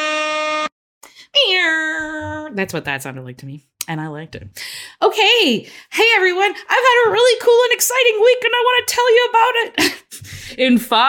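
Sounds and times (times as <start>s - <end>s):
air horn blasts: 0.0s - 0.8s
speech: 2.6s - 11.0s.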